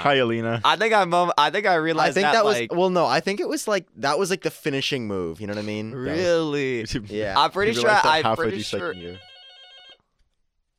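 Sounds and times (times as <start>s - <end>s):
speech: 0.0s - 9.3s
telephone ringing with an incoming call: 7.7s - 10.1s.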